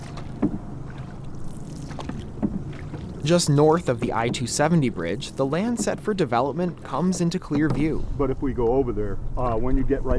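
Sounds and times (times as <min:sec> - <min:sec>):
constant low rush of moving river water: 0:00.0 - 0:07.9
canoe paddles dipping through river water upstream: 0:00.0 - 0:08.8
faint wind: 0:00.0 - 0:10.1
speech: 0:03.2 - 0:10.1.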